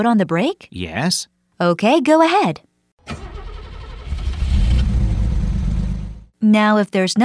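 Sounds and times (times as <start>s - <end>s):
speech: 0.0s - 3.2s, 6.4s - 7.2s
car engine starting and idling: 3.0s - 6.3s.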